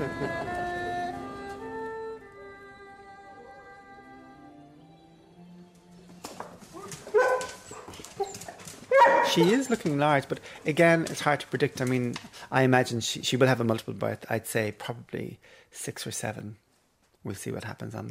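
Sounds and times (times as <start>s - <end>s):
laughter: 0.0s - 1.3s
Weimaraner dogs whining: 6.7s - 9.8s
speech: 9.3s - 16.6s, 17.2s - 18.0s.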